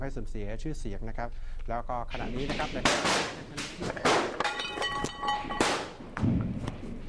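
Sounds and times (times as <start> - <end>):
man talking during a news broadcast: 0.0 - 4.2
gunfire: 5.6 - 6.6.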